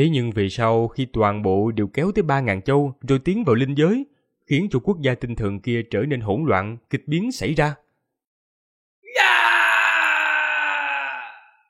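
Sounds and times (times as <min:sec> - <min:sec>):
speech: 0:00.0 - 0:07.8
agonized scream: 0:09.0 - 0:11.6.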